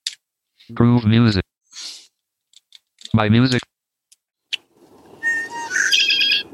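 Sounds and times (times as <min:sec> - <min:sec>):
speech: 0:00.7 - 0:01.4, 0:03.1 - 0:03.6
red-winged blackbird singing: 0:05.2 - 0:06.5.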